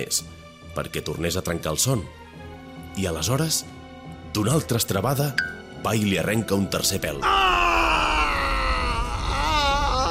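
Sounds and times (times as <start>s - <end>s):
speech: 0.0s - 2.2s, 3.0s - 3.8s, 4.4s - 7.6s
single voice performing a roar of rage: 7.2s - 10.0s.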